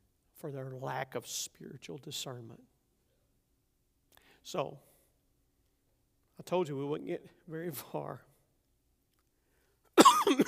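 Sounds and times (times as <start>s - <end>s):
speech: 0.4s - 2.7s, 4.4s - 4.9s, 6.4s - 8.3s
person coughing harshly: 10.0s - 10.4s.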